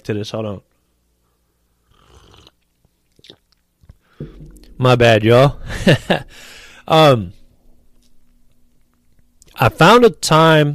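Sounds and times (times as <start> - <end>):
speech: 0.0 - 0.7, 4.8 - 7.4, 9.6 - 10.7
person slurping hot tea: 1.9 - 2.6
person swallowing tea: 2.0 - 4.7.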